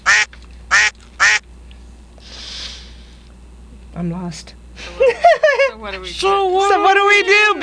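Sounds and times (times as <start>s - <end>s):
duck quacking: 0.0s - 1.4s
soft breathy hiss: 2.2s - 3.3s
speech: 4.0s - 7.6s
laughter: 4.8s - 5.8s.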